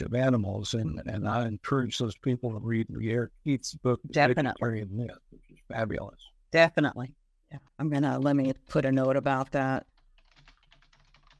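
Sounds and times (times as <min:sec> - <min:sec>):
speech: 0:00.0 - 0:09.9
typing quickly on a computer keyboard: 0:08.1 - 0:11.3.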